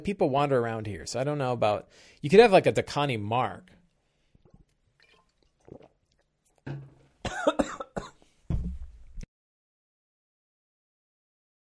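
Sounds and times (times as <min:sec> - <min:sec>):
speech: 0:00.0 - 0:03.8
quiet throaty sounds: 0:03.8 - 0:07.8
person coughing hard after choking on water: 0:07.2 - 0:08.2.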